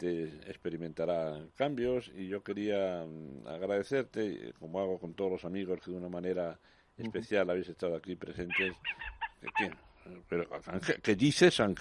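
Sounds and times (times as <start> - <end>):
speech: 0.0 - 11.7
Java chickens squabbling and clucking: 8.4 - 9.9.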